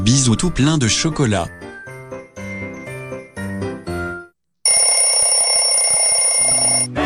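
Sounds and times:
speech: 0.1 - 1.6
loud alarm clock ringing: 4.7 - 6.9
short tones: 4.7 - 6.9.

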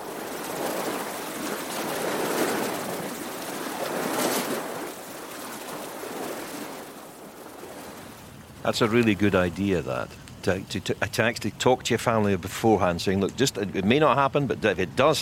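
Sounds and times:
sea waves: 0.0 - 15.2
speech: 8.6 - 15.2.

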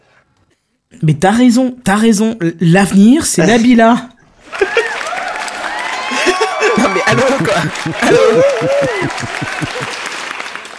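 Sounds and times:
speech: 1.0 - 4.1, 7.0 - 10.0
crowd applauding: 4.3 - 10.7
laughter: 4.4 - 5.1, 6.0 - 10.2.

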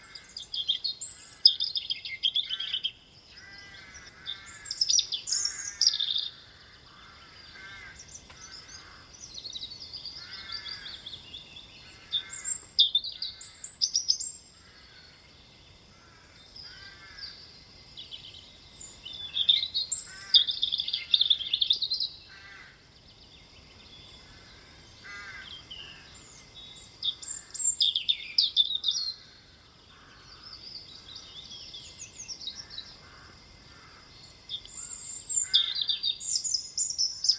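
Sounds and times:
bird singing warbling phrases: 0.0 - 37.3.

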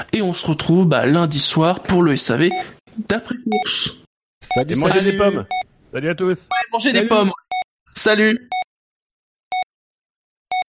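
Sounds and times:
speech: 0.0 - 7.4, 8.0 - 8.6
electronic beeps: 3.4 - 5.7, 7.3 - 7.7.

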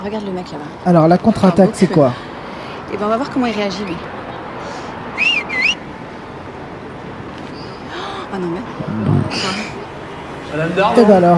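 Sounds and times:
speech: 0.0 - 2.3, 2.9 - 4.2, 8.3 - 9.8, 10.5 - 11.3
outdoor street ambience: 0.0 - 11.3
loud two-note wolf whistle: 5.2 - 5.8.

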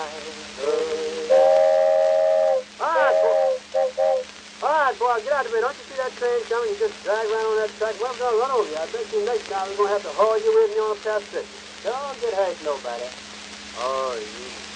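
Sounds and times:
approaching train whistle blowing: 0.7 - 4.2
speech: 5.0 - 14.6.

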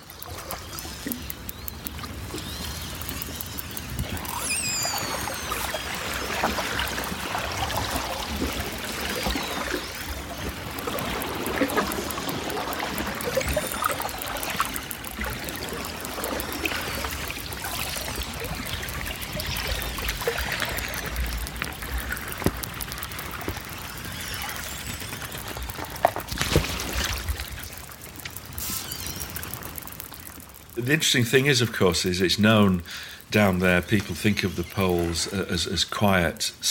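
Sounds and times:
dense continuous underwater crackle and wash under sea ice: 0.0 - 36.6
orca whistles and squeals recorded by hydrophones under sea ice: 4.1 - 6.3
speech: 30.9 - 36.6.

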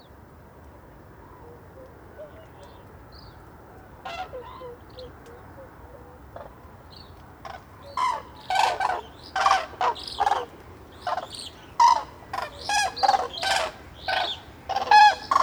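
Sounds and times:
common cranes trumpeting at a winter roost on a lake in Marne, France: 7.4 - 15.4
juvenile common cranes whistling: 7.5 - 15.4.

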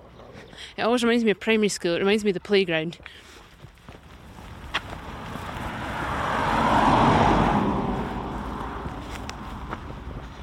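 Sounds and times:
speech: 0.6 - 3.4
light footsteps: 3.0 - 10.4
car passing along a road with tyre and engine noise: 4.0 - 10.4.

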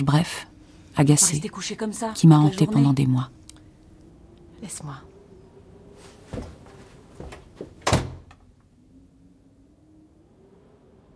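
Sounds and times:
speech: 0.0 - 3.4, 4.6 - 5.1
soft knocks and bumps of door handle and frame: 6.0 - 8.0
door shut sharply: 7.8 - 8.4.

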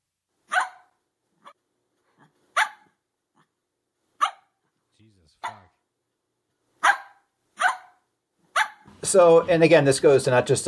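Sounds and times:
dog barking sharply: 0.5 - 1.6, 2.5 - 3.0, 4.2 - 4.6, 5.4 - 5.7, 6.8 - 8.9
speech: 5.0 - 5.8, 9.0 - 10.6.

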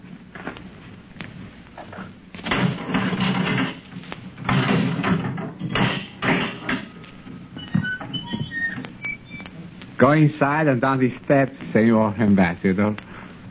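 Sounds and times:
heavy door unlatched and swung open: 2.4 - 9.8
speech: 10.0 - 13.1.

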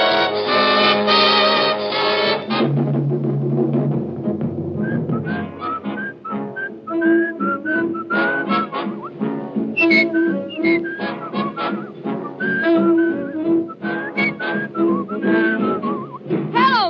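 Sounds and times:
swing band with horns and rhythm: 0.0 - 16.8
person whistling a lilting melody: 4.8 - 9.2, 9.8 - 16.3.

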